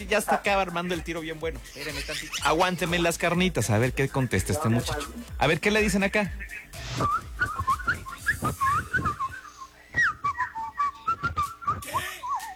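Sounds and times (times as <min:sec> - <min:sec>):
speech: 0:00.0 - 0:07.5
person whistling a wavering warbling tune: 0:06.9 - 0:12.5.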